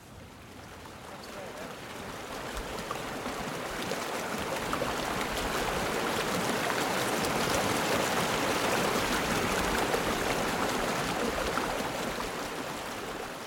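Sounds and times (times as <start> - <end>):
glacial creek rushing over rocks in the Chugach Mountains: 0.0 - 13.4.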